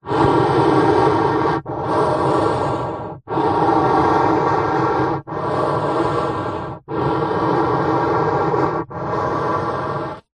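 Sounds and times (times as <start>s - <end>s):
human long breaths through long hollow card tube: 0.0s - 10.3s.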